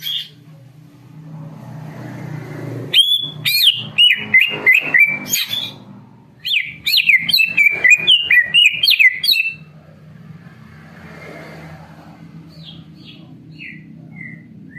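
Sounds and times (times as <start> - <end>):
Greater green leafbird singing ringing slurred whistles and chirps: 0.0 - 0.4, 2.9 - 9.7, 12.5 - 14.7.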